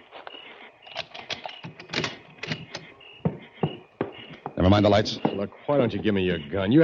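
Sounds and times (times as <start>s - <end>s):
key rattling and clicking in a lock: 0.9s - 2.8s
speech: 4.6s - 6.8s.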